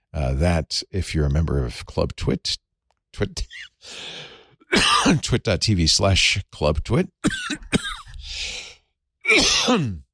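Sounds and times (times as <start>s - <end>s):
speech: 0.2s - 8.6s, 9.3s - 10.0s
person coughing during a live broadcast: 4.7s - 5.3s, 7.2s - 8.2s, 9.3s - 10.0s.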